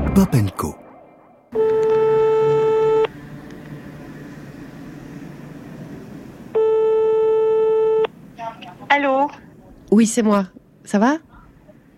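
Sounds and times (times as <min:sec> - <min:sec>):
speech: 0:00.1 - 0:00.8, 0:09.9 - 0:11.3
telephone ringing tone while calling a listener: 0:01.5 - 0:03.1, 0:06.5 - 0:08.1.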